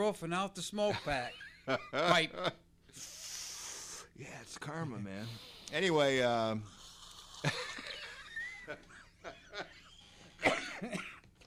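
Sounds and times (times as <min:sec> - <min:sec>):
speech: 0:00.0 - 0:03.2, 0:04.2 - 0:06.8, 0:07.4 - 0:07.7, 0:08.7 - 0:09.7
person coughing with raspy hacks: 0:10.4 - 0:11.2.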